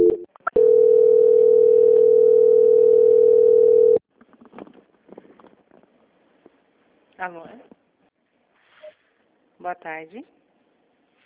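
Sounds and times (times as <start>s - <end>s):
telephone call transfer tone on a bank's customer line: 0.0s - 4.0s
speech: 7.3s - 7.7s, 9.6s - 10.4s.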